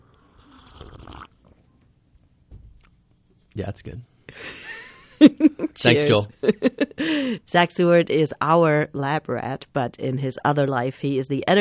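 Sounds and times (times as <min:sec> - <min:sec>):
slurping sip of coffee from a cup: 0:00.0 - 0:01.4
mouth and swallowing sounds: 0:00.1 - 0:01.5
speech: 0:03.6 - 0:04.6, 0:05.2 - 0:11.5.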